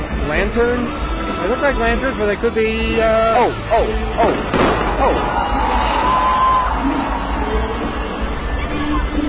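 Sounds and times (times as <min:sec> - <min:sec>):
crowd noise: 0:00.0 - 0:09.2
speech: 0:00.3 - 0:05.7
fireworks bursting in the sky with sharp booms: 0:04.2 - 0:06.2
whistling streaks of fireworks: 0:04.2 - 0:06.7.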